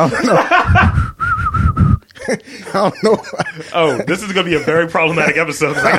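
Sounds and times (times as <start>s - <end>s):
laughter: 0.0s - 1.1s, 2.1s - 5.9s
speech: 0.0s - 1.1s, 2.3s - 5.9s
rhythmic low thumps: 0.5s - 2.1s
person whistling a jaunty tune: 0.8s - 2.0s.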